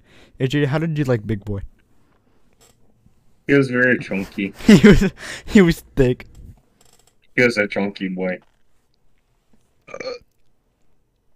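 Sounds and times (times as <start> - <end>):
speech: 0.4 - 1.7, 3.5 - 6.3, 7.4 - 8.5, 9.9 - 10.2
short soft burp: 9.8 - 10.3.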